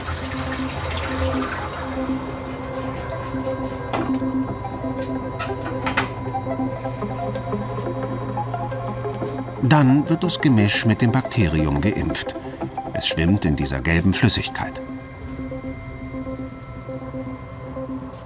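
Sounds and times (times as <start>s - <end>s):
water mixing with sludge churning and sloshing in a tank: 0.0s - 3.9s
steady mechanical hum: 0.0s - 18.2s
speech: 9.7s - 14.9s.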